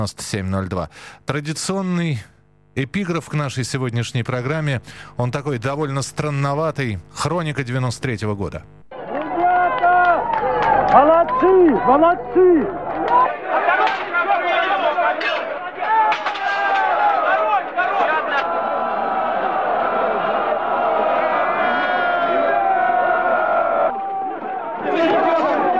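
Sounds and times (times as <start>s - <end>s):
speech: 0.0s - 8.8s, 10.9s - 13.2s
large agitated crowd shouting and chattering during street unrest: 8.9s - 25.7s.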